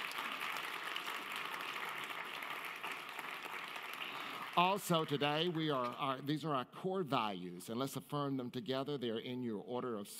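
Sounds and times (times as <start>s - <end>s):
audience applauding: 0.0s - 6.0s
speech: 4.6s - 10.1s.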